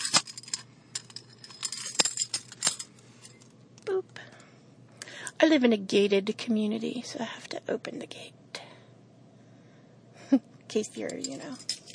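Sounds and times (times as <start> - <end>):
metal keys jangling and clinking: 0.0 - 3.4, 11.0 - 11.9
speech: 5.4 - 8.4, 10.3 - 11.7.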